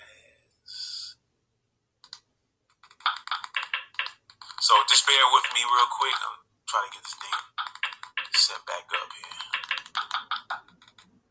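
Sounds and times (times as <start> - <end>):
typing on a laptop keyboard: 2.0 - 6.3, 7.0 - 11.2
speech: 4.9 - 7.5, 8.5 - 9.4.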